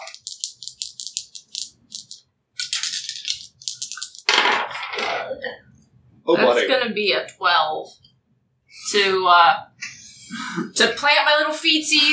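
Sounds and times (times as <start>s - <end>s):
dice rattling: 0.0s - 5.1s
speech: 6.3s - 8.0s, 8.9s - 9.7s, 10.3s - 12.1s.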